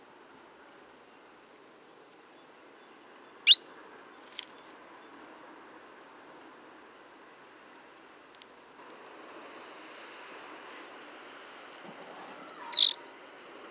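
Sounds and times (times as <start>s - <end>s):
soft background hiss: 0.0s - 13.6s
common chaffinch Fringilla coelebs giving sharp high calls: 12.3s - 13.5s.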